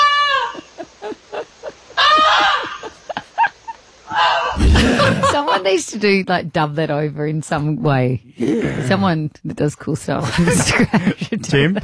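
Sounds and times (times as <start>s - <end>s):
goose honking: 0.0s - 0.7s, 4.1s - 4.6s
laughter: 0.5s - 3.8s, 4.6s - 5.8s, 10.2s - 11.8s
speech: 5.6s - 11.8s.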